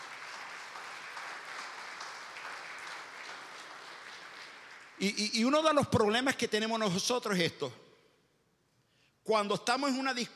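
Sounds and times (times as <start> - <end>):
audience applauding loudly: 0.0 - 5.2
speech: 5.0 - 7.8, 9.3 - 10.3.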